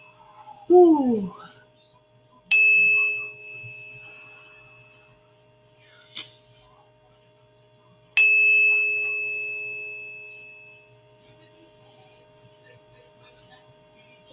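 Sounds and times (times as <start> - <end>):
speech: 0.7 - 1.4
432 Hz tuning fork ringing: 2.4 - 5.6, 8.1 - 11.4.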